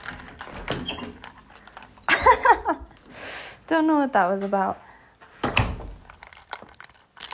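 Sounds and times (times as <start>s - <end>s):
door creaking as it swings: 0.0s - 1.8s, 5.4s - 6.3s
speech: 3.7s - 4.9s.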